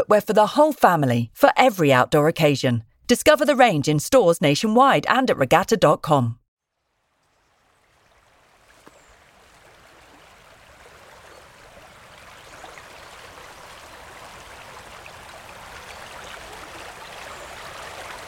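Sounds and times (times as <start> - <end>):
speech: 0.0 - 6.4
river in spate rushing fast: 8.3 - 18.2.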